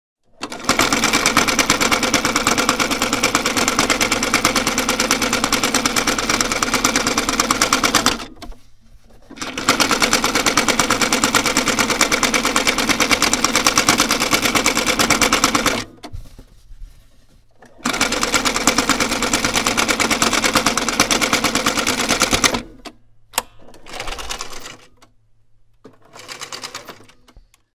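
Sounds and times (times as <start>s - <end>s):
sewing machine: 0.2s - 8.6s, 9.2s - 16.1s, 17.6s - 22.9s, 23.7s - 25.0s, 25.9s - 27.4s.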